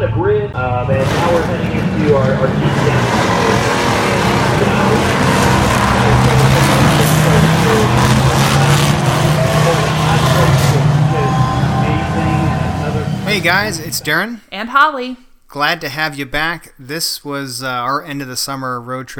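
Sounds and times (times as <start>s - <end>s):
speech: 0.0s - 5.4s, 13.3s - 19.1s
several GT4 race car engines rumbling and roaring: 0.0s - 14.2s.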